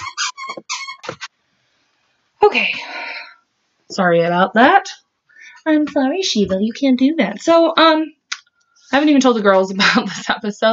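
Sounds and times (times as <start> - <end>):
squeaky toy squeezed by a dog: 0.0 - 1.3
speech: 2.5 - 3.1, 3.9 - 5.0, 5.6 - 8.2, 8.9 - 10.7.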